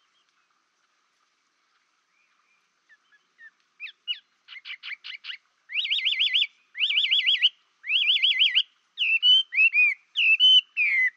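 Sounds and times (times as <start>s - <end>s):
Chinese hwamei song: 0.0s - 1.0s, 1.6s - 11.1s.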